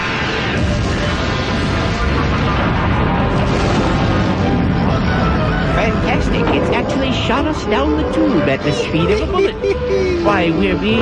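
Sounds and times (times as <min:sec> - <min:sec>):
sustained explosion blast with crackling: 0:00.0 - 0:09.4
speech: 0:07.4 - 0:10.9
laughter: 0:08.6 - 0:10.9.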